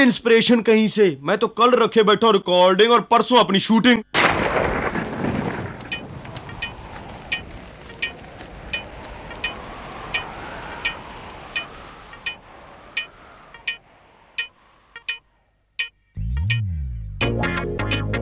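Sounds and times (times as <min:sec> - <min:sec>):
speech: 0:00.0 - 0:04.3
heavy monsoon rain: 0:04.2 - 0:15.0
loud rumble of thunder: 0:04.2 - 0:15.1
sharp ticking sounds: 0:04.8 - 0:16.6.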